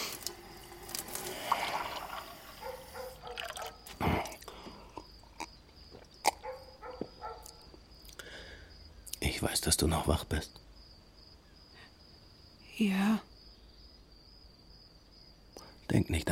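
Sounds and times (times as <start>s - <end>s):
water running from a tap: 0.0s - 3.7s
water dripping: 0.0s - 4.6s
speech: 9.4s - 10.7s, 12.8s - 13.3s, 16.0s - 16.3s.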